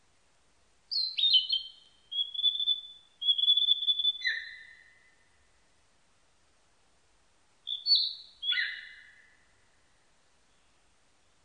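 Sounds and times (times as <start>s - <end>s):
Narcissus flycatcher singing: 0.9s - 5.0s, 7.7s - 9.4s.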